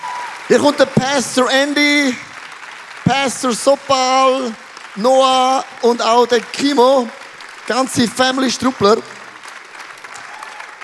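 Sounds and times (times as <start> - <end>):
large audience applauding: 0.0 - 10.8
speech: 0.5 - 2.3, 3.1 - 9.2.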